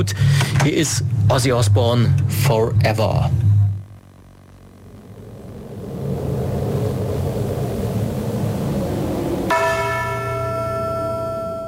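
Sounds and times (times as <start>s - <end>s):
speech: 0.0s - 3.4s
low steady rumble: 0.0s - 11.6s
single deep bell ringing out: 9.5s - 11.6s.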